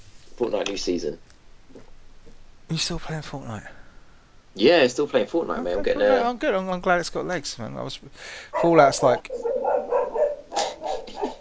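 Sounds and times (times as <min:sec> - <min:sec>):
speech: 0:00.4 - 0:01.9, 0:02.7 - 0:03.8, 0:04.5 - 0:09.6
dog barking indoors: 0:08.5 - 0:11.3.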